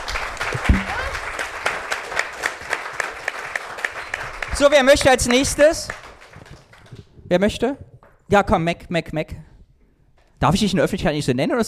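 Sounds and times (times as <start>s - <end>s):
audience applause: 0.0s - 7.1s
speech: 4.6s - 6.0s, 7.3s - 9.5s, 10.4s - 11.6s.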